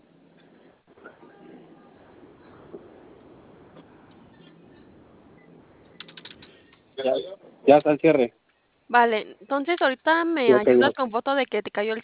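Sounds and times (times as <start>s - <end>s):
steady hiss of noise: 0.0s - 12.0s
key presses on a lit keypad: 5.9s - 6.5s
speech: 7.0s - 12.0s.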